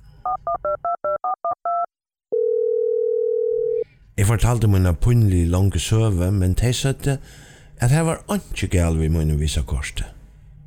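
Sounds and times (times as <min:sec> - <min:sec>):
steady unbroken telephone tone: 0:01.2 - 0:03.8
speech: 0:04.2 - 0:10.2.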